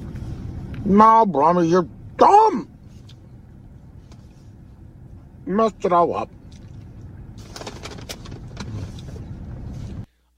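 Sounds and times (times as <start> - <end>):
steady droning engine rumble in a car interior: 0.0 - 10.3
speech: 0.8 - 2.7, 5.5 - 6.4
brief clicks and rustles: 7.4 - 9.2.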